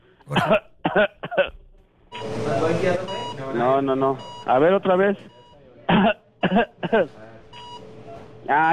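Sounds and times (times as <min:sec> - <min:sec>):
speech: 0:00.3 - 0:01.1, 0:03.9 - 0:07.2, 0:08.5 - 0:08.7
short voiced coughs: 0:00.3 - 0:01.6, 0:05.9 - 0:07.2.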